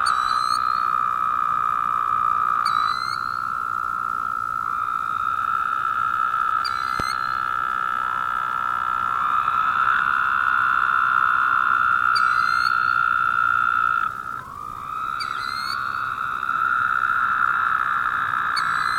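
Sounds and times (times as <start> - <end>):
Woodhouse's toad chorus of nasal buzzes: 0.0 - 18.9.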